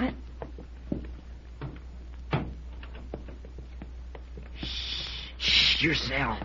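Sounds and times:
faint shuffling: 0.0 - 6.4
steady low hum: 0.0 - 6.4
door pulled shut with a firmer thump: 1.6 - 2.6
speech: 5.8 - 6.4.

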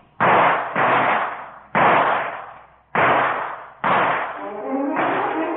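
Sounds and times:
loud booming gunshots: 0.2 - 5.5.

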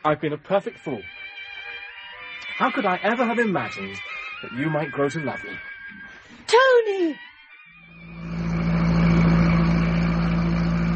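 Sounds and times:
speech: 0.0 - 1.2, 2.6 - 7.3
car engine as the car is driven away: 8.0 - 10.9.

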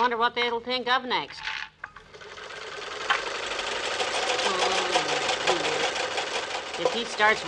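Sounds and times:
speech: 0.0 - 1.6, 6.8 - 7.4
sewing machine running while winding a bobbin with thread: 2.0 - 7.4.

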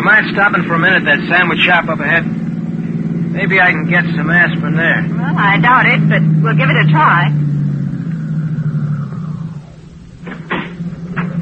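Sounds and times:
car engine idling, kept running because the battery is down: 0.0 - 11.4
speech: 0.1 - 2.4, 3.4 - 7.4
short knocks or clunks: 10.2 - 11.4.

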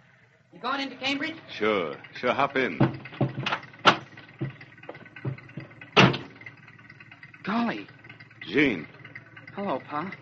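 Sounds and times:
truck engine idling: 0.0 - 10.2
speech: 0.6 - 3.1, 7.5 - 9.0, 9.6 - 10.2
sharp clunks: 2.6 - 6.6.

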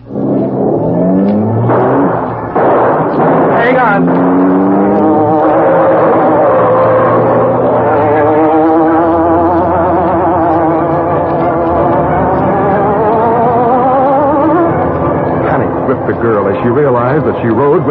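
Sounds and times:
car engine revving as it accelerates through city streets: 0.0 - 17.8
car tires squealing through sharp turns: 0.0 - 17.8
speech: 16.5 - 17.8.

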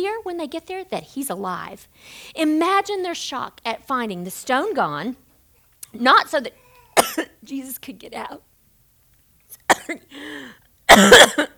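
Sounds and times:
speech: 0.0 - 5.2, 5.9 - 8.5, 9.6 - 11.5
person coughing after breath went down the wrong way: 6.9 - 7.4, 9.7 - 10.3, 10.9 - 11.5.

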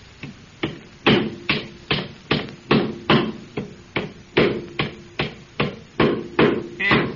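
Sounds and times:
hammer pounding nails into a wooden board while building a small doghouse: 0.6 - 7.1.

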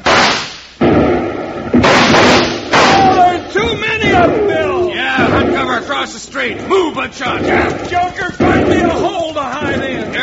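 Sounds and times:
gunshots from a gang of gunmen in a dance hall doorway: 0.0 - 10.2
speech: 5.8 - 9.9.

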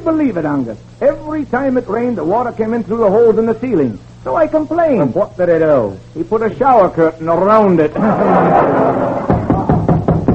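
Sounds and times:
speech: 0.0 - 9.0
steady low noise: 0.0 - 10.3
laughter: 7.9 - 9.8
hard raps knocking on a door: 9.3 - 10.3.

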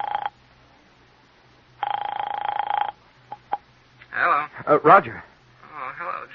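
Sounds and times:
telephone ringing heard down the line: 0.0 - 0.4, 1.8 - 3.6
speech: 4.6 - 5.3.

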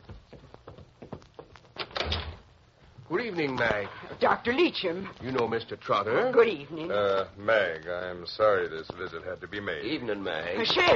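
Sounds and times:
door being opened indoors with clattering knocks and rattles: 1.8 - 2.5
speech: 3.1 - 10.9.

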